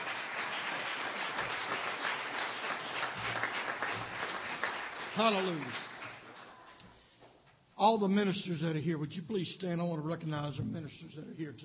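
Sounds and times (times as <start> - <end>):
crowd clapping: 0.0 - 6.8
speech: 5.2 - 5.9, 7.8 - 11.6.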